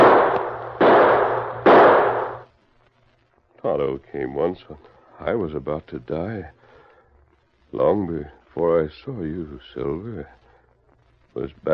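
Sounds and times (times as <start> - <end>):
gunshots: 0.0 - 2.5
speech: 3.6 - 6.6, 7.7 - 10.4, 11.4 - 11.7.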